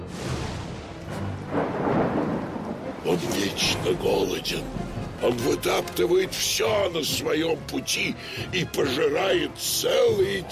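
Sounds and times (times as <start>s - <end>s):
rolling thunder: 0.1s - 5.2s
speech: 3.0s - 10.4s.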